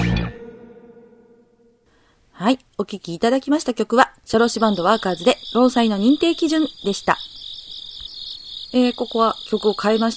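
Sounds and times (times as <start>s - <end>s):
speech: 2.4s - 7.4s, 8.7s - 10.1s
crickets chirping: 4.3s - 10.1s.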